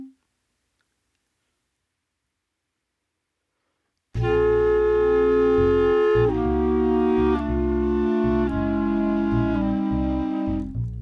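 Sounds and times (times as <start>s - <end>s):
bass: 4.1s - 11.0s
horn break: 4.1s - 11.0s.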